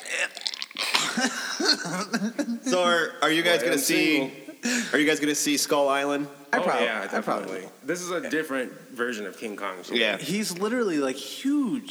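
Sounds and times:
person imitating gagging and regurgitating: 0.0s - 3.2s
laughter: 0.8s - 11.1s
speech: 1.2s - 11.9s.

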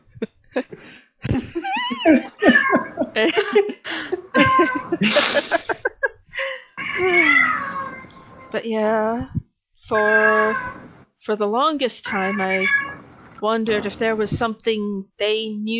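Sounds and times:
laughter: 0.0s - 6.7s
speech: 0.2s - 2.6s, 3.2s - 4.2s, 8.7s - 15.7s
cat meowing: 1.9s - 3.1s, 4.4s - 5.0s, 6.8s - 8.5s, 10.0s - 10.9s, 12.1s - 13.0s.

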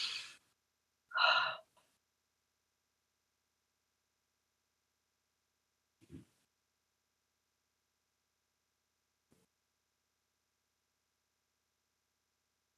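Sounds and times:
deep breaths inhaling and exhaling: 0.0s - 0.4s, 1.1s - 1.9s.

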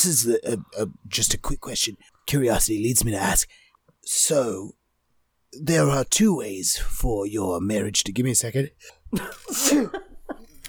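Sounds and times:
speech: 0.0s - 4.8s, 5.5s - 10.0s
faint breaths and small vocal sounds: 3.5s - 3.9s
person sneezing: 9.4s - 10.0s.

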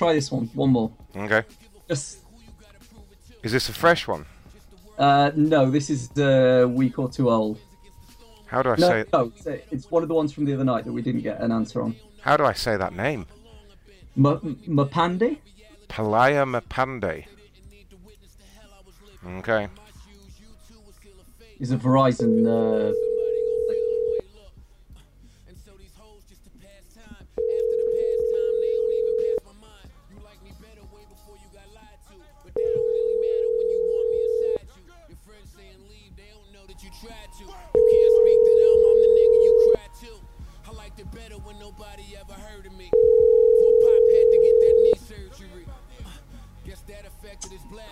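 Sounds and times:
speech: 0.0s - 2.2s, 3.4s - 4.3s, 5.0s - 7.7s, 8.5s - 13.4s, 14.2s - 17.4s, 19.2s - 19.8s, 21.6s - 23.1s
telephone ringback tone of outgoing call: 22.2s - 24.2s, 27.4s - 29.4s, 32.6s - 34.6s, 37.7s - 39.8s, 42.9s - 45.0s.

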